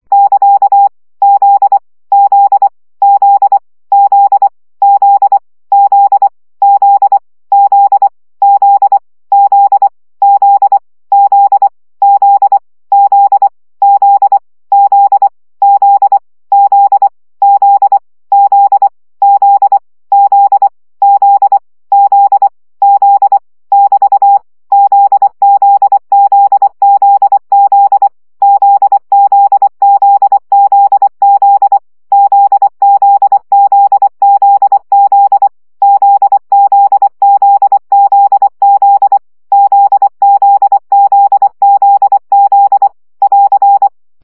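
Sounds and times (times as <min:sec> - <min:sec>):
CW morse code practice beeps: 0:00.1 - 0:44.0.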